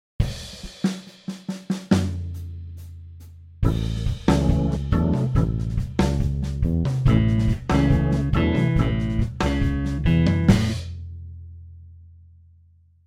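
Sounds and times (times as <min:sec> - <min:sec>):
blues rumba guitar: 0:03.7 - 0:10.8.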